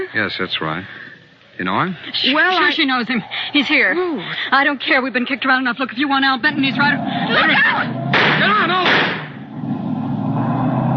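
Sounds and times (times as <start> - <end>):
speech: 0.1 - 9.2
car engine roaring past: 6.4 - 10.9.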